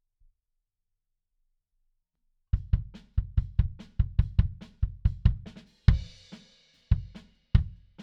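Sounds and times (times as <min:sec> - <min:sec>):
bass drum: 0:02.6 - 0:06.3, 0:06.9 - 0:08.0.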